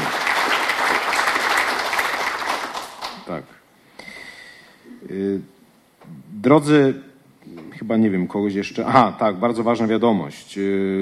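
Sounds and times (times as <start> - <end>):
congress audience applause for the hosts: 0.0 - 3.3
speech: 6.5 - 7.1, 7.8 - 10.9.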